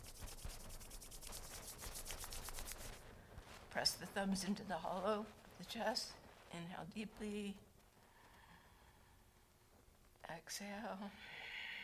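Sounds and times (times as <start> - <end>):
palms rubbing briskly together at the chest: 0.0 - 3.0
speech: 3.8 - 7.7, 10.5 - 11.4.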